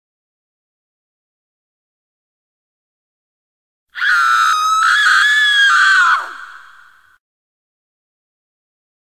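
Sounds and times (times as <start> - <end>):
horror scream: 4.0 - 7.2.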